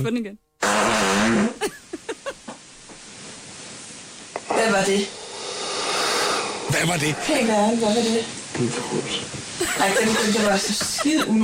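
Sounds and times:
speech: 0.0s - 1.8s, 4.6s - 5.2s, 6.7s - 11.4s
fart: 0.6s - 1.7s
laughter: 1.6s - 2.4s, 9.6s - 11.4s.

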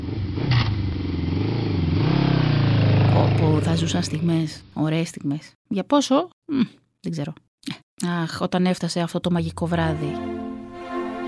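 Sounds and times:
motorcycle engine revving: 0.0s - 4.8s
clatter: 0.1s - 1.3s
speech: 3.6s - 10.4s.

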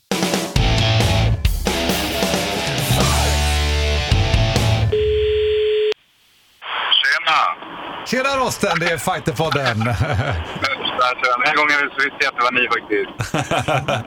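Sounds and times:
loud busy music-like sound: 0.1s - 4.9s
steady electronic phone ringing tone of a placed call: 4.9s - 6.0s
voice answering on a phone line: 6.7s - 9.9s, 10.6s - 13.2s
speech: 8.1s - 14.0s
laughter: 8.6s - 11.2s, 13.2s - 14.0s.

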